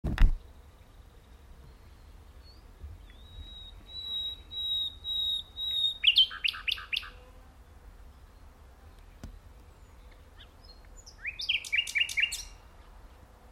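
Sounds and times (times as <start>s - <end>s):
nightingale Luscinia megarhynchos singing: 1.7s - 7.2s, 8.2s - 12.6s.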